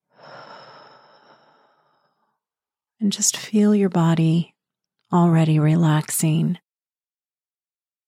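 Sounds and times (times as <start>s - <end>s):
deep breath exhaled during a guided relaxation exercise: 0.1s - 2.3s
speech: 3.0s - 4.5s, 5.1s - 6.6s.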